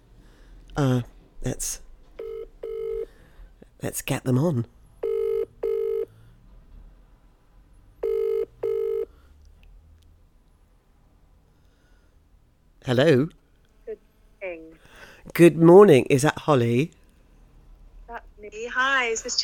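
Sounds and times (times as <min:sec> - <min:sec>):
speech: 0:00.8 - 0:01.8, 0:03.8 - 0:04.8, 0:12.9 - 0:13.4, 0:15.4 - 0:17.0, 0:18.5 - 0:19.4
phone ringing tone in double pulses: 0:02.2 - 0:03.1, 0:05.0 - 0:06.1, 0:08.0 - 0:09.1.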